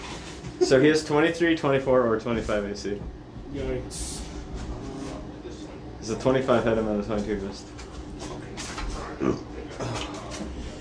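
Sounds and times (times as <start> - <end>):
speech: 0.7 - 4.2, 6.1 - 7.8, 9.2 - 10.1
short low guttural hot dog burp: 9.2 - 10.0.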